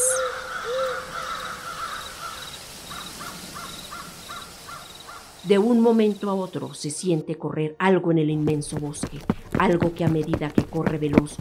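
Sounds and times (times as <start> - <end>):
flock of black crows cawing: 0.0 - 5.4
speech: 5.4 - 11.3.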